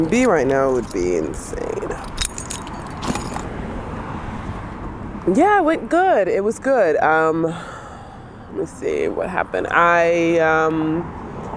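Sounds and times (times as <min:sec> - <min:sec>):
speech: 0:00.0 - 0:02.2, 0:05.2 - 0:07.7, 0:08.5 - 0:11.2
bright metallic jingle: 0:00.0 - 0:03.5
road traffic rumble by a park: 0:00.0 - 0:11.5
short rattle: 0:00.1 - 0:03.5.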